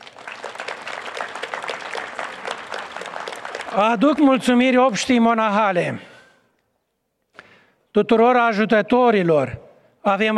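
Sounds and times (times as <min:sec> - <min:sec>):
audience applause: 0:00.0 - 0:04.4
speech: 0:03.7 - 0:06.1, 0:08.0 - 0:10.3.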